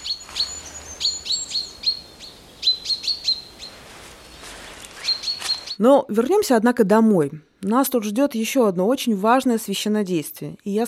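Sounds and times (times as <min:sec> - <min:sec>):
birds singing in a forest: 0:00.0 - 0:05.9
faint rustling: 0:03.6 - 0:05.8
speech: 0:05.8 - 0:10.8.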